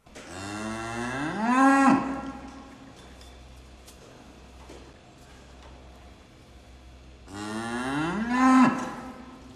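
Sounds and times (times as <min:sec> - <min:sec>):
cow mooing: 0:00.3 - 0:02.6, 0:07.3 - 0:09.4.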